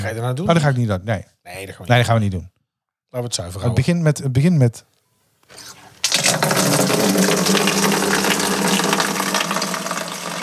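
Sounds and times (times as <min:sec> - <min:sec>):
speech: 0:00.0 - 0:02.5, 0:03.1 - 0:04.9
steady stream of urine splashing into water: 0:06.0 - 0:10.4.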